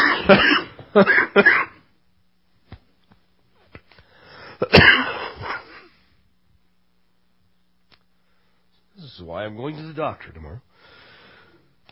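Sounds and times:
person clearing throat: 0:00.0 - 0:01.9, 0:04.6 - 0:06.0
person coughing: 0:00.0 - 0:01.9, 0:04.6 - 0:06.0
speech: 0:00.3 - 0:01.7, 0:09.3 - 0:10.9.

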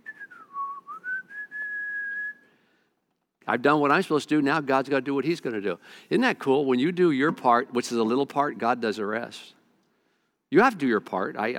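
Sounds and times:
person whistling a short slow tune: 0:00.0 - 0:02.5
speech: 0:03.5 - 0:09.6, 0:10.5 - 0:11.5.

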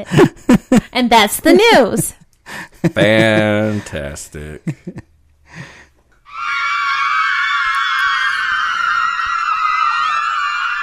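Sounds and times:
speech: 0:00.0 - 0:05.7
crowd of girls shrieking and squealing in excitement: 0:06.3 - 0:10.8.

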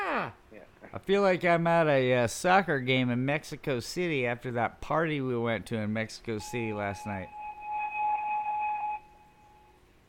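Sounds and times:
faint room noise: 0:00.0 - 0:10.0
speech: 0:00.9 - 0:07.4
electronic alarm beeping: 0:06.4 - 0:09.8.

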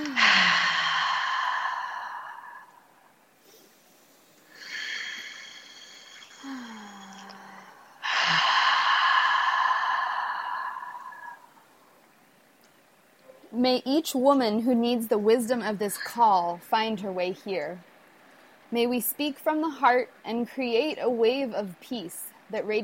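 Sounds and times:
deep breaths in through the nose and out: 0:00.0 - 0:12.0
speech: 0:13.6 - 0:17.9, 0:18.7 - 0:22.8.

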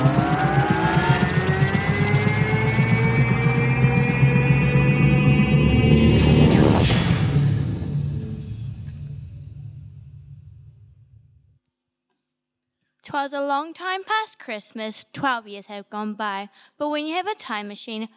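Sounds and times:
propeller engine droning after being wound up: 0:00.0 - 0:09.0
propeller engine loud harsh surge: 0:00.0 - 0:11.3
speech: 0:13.2 - 0:18.1.

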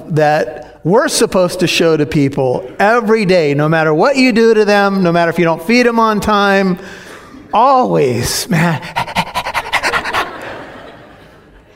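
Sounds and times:
speech: 0:00.1 - 0:09.1
laughter: 0:08.5 - 0:11.7
small 30-pound female shepherd mix dog panting: 0:08.9 - 0:10.5.

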